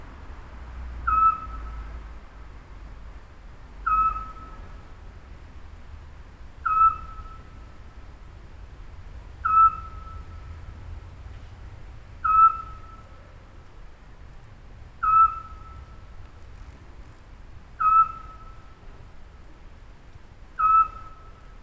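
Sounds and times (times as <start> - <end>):
Eurasian scops owl calling: 1.1 - 1.8, 3.8 - 4.6, 6.6 - 7.6, 9.4 - 10.5, 12.2 - 13.4, 15.0 - 16.1, 17.8 - 18.8, 20.6 - 21.5.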